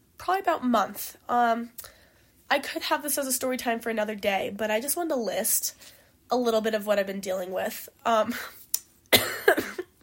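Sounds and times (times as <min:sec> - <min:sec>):
speech: 0:00.2 - 0:01.9, 0:02.5 - 0:08.6
harsh raspy coughing fit: 0:09.1 - 0:10.0.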